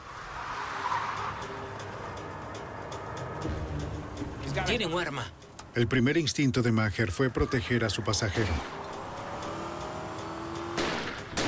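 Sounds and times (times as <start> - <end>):
tire squeal: 0.0 - 2.2
car swerving to the side of the road and braking hard: 0.0 - 5.8, 7.5 - 11.4
loud rumble of road and engine noise: 0.0 - 11.4
speech: 4.6 - 8.8.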